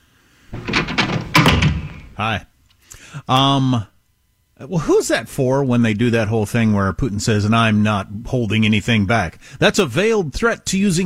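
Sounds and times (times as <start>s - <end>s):
door being opened: 0.5s - 2.2s
speech: 2.2s - 2.5s, 3.2s - 3.9s, 4.6s - 11.0s.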